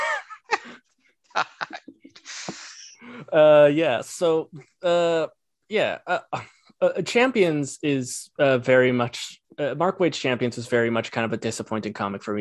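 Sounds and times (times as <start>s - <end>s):
laughter: 0.0s - 0.8s, 1.4s - 3.0s
exaggerated nasal sniff: 2.2s - 3.0s
speech: 3.3s - 12.3s.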